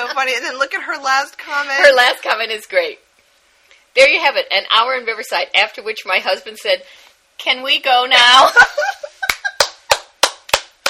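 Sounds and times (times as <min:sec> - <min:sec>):
speech: 0:00.2 - 0:03.0, 0:04.0 - 0:09.1
hands clapping in applause: 0:09.3 - 0:10.8.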